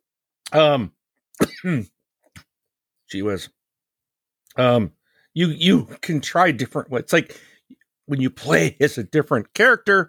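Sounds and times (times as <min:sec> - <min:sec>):
speech: 0:00.5 - 0:02.0, 0:03.1 - 0:03.6, 0:04.6 - 0:07.5, 0:08.1 - 0:10.0
person coughing from a COVID cough: 0:01.4 - 0:02.0.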